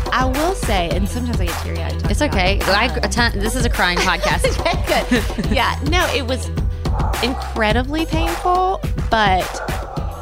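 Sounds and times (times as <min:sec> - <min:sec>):
speech: 0:00.2 - 0:09.8
laughter: 0:02.7 - 0:06.2
dog making noise: 0:06.9 - 0:07.5, 0:09.4 - 0:10.1.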